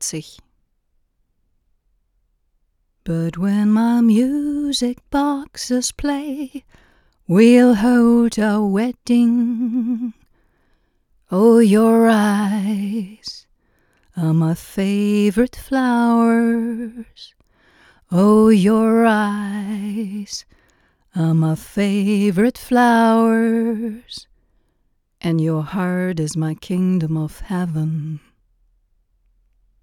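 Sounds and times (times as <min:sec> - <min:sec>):
person singing into a Neumann U 47 microphone: 0:03.1 - 0:06.7, 0:07.3 - 0:10.2, 0:11.3 - 0:13.4, 0:14.2 - 0:17.3, 0:18.1 - 0:20.5, 0:21.1 - 0:24.2, 0:25.3 - 0:28.3.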